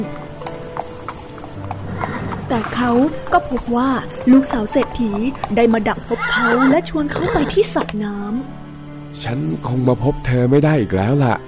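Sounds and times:
horse hooves clip-clopping at a walk while being ridden: 0.0 - 8.5
speech: 2.5 - 8.6, 9.2 - 11.4.

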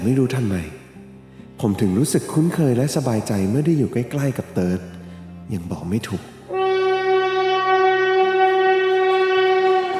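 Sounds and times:
speech: 0.0 - 0.8, 1.6 - 6.4
train horn blaring: 6.5 - 9.9.

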